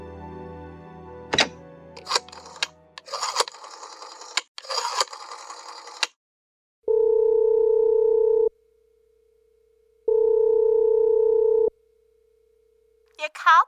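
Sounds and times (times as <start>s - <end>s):
telephone clicking and dialing noises: 1.4s - 6.2s
telephone line busy signal: 6.9s - 8.5s, 10.1s - 11.7s.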